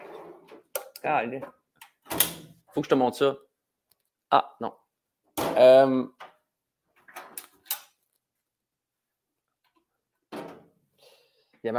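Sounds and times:
desk drawers sliding open and shut on scraping runners: 0:00.0 - 0:02.6, 0:07.0 - 0:07.9, 0:10.3 - 0:10.8
speech: 0:01.0 - 0:03.5, 0:04.3 - 0:04.8, 0:05.6 - 0:06.2.

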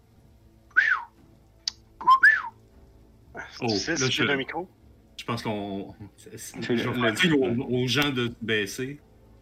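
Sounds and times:
whistling from an elf: 0:00.7 - 0:01.2, 0:02.0 - 0:02.6
speech: 0:03.6 - 0:09.1.

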